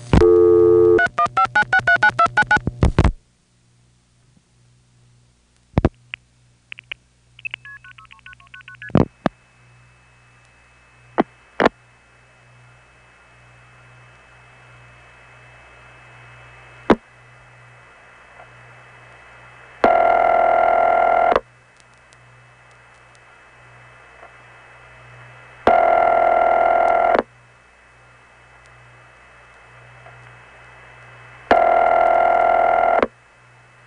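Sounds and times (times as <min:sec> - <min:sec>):
rapid dialing tones and clicks through a Crossbar 5 tandem switch: 0:00.2 - 0:03.1, 0:06.8 - 0:09.4, 0:19.8 - 0:21.5, 0:25.7 - 0:27.3, 0:31.5 - 0:33.2
loud telephone ringing signal: 0:19.9 - 0:21.4, 0:25.7 - 0:27.2, 0:31.5 - 0:33.1.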